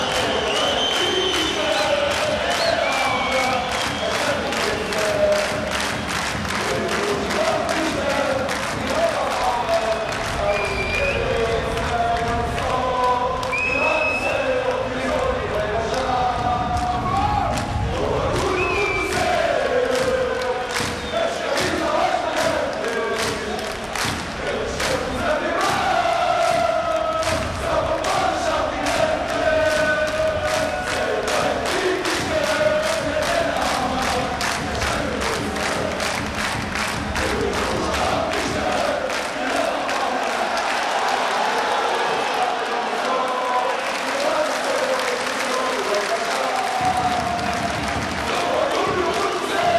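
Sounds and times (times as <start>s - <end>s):
chants in Lisbon: 0.0s - 49.7s.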